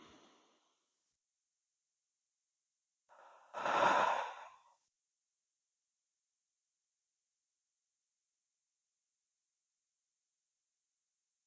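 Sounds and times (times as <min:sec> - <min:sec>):
person breathing slowly in and out during a guided meditation exercise: 0:00.0 - 0:00.6, 0:03.1 - 0:04.7.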